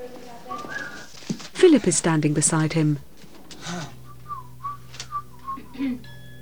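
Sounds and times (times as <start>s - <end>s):
soft rustles: 0.0s - 2.0s
low steady hum: 0.0s - 6.4s
person whistling a light wandering tune: 0.5s - 1.1s, 4.0s - 6.4s
speech: 1.6s - 3.1s.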